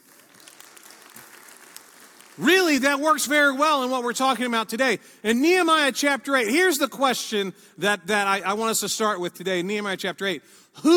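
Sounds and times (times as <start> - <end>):
room full of people applauding: 0.0 - 2.5
speech: 2.4 - 10.9.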